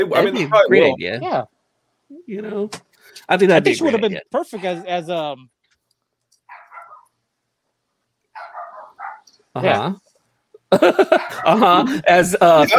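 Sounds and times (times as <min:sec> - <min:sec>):
speech: 0:00.0 - 0:01.6, 0:02.3 - 0:05.6, 0:09.6 - 0:10.1, 0:10.7 - 0:12.7
dog barking: 0:06.5 - 0:07.2, 0:08.3 - 0:09.3, 0:11.1 - 0:11.6
laughter: 0:10.7 - 0:12.7.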